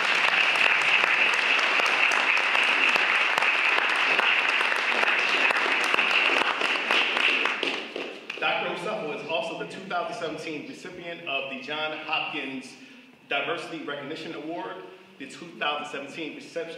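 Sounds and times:
audience applause: 0:00.0 - 0:08.9
speech: 0:10.4 - 0:16.7.

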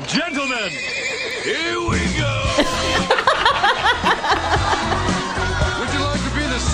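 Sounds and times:
horse whinnying as its rider arrives: 0:00.3 - 0:01.9
laughter: 0:02.5 - 0:06.6.

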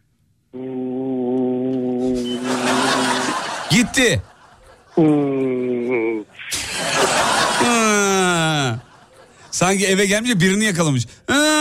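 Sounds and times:
voice imitating the hum of a running refrigerator: 0:00.5 - 0:03.4, 0:05.0 - 0:06.6
laughter: 0:02.1 - 0:09.6
speech: 0:03.7 - 0:04.3, 0:05.0 - 0:05.5, 0:09.6 - 0:11.5.

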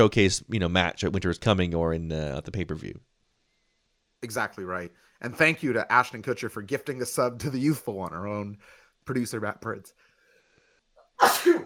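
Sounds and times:
speech: 0:00.0 - 0:03.1, 0:04.2 - 0:10.0, 0:11.2 - 0:11.6
sneeze: 0:11.2 - 0:11.6.

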